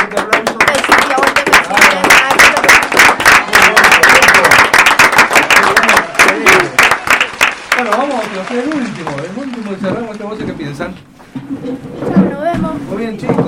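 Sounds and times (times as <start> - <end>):
audience applause: 0.0 - 10.4
speech: 8.5 - 12.0, 12.8 - 13.4.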